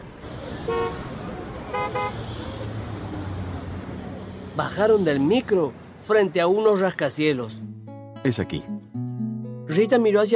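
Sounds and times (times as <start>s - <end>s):
steady rumble of city traffic: 0.0s - 8.7s
car horns honking in city traffic: 0.4s - 2.9s
speech: 4.6s - 8.8s, 9.8s - 10.3s.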